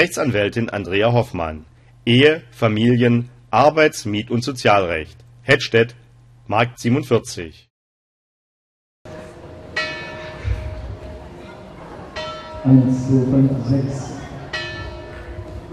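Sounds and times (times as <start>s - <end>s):
speech: 0.0s - 7.7s, 12.6s - 14.1s
church bells ringing: 9.7s - 10.8s, 11.4s - 15.7s.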